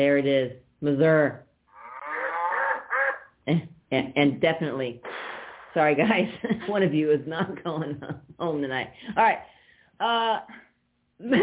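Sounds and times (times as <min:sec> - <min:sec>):
speech: 0:00.0 - 0:01.5, 0:03.4 - 0:05.1, 0:05.8 - 0:10.6, 0:11.2 - 0:11.4
cow mooing: 0:01.7 - 0:03.3.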